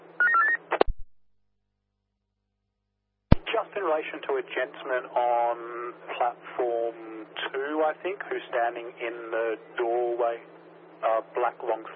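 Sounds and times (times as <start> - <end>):
electronic telephone keypad tones: 0.2 - 0.9
sharp clicks and low thumps of a telephone being dialled: 0.7 - 1.1
speech: 3.7 - 11.9.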